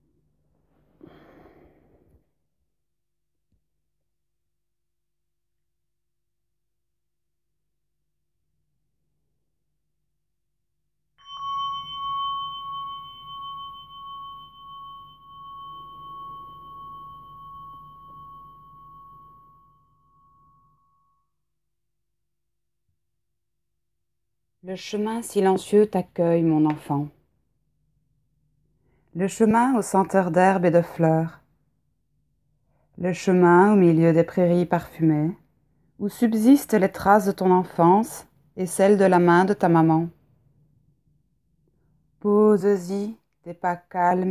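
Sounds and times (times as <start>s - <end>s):
soft breath: 0.7s - 2.3s
bell struck and ringing: 11.2s - 20.9s
speech: 24.6s - 27.2s, 29.2s - 31.4s, 33.0s - 35.4s, 36.0s - 40.2s, 42.2s - 44.3s.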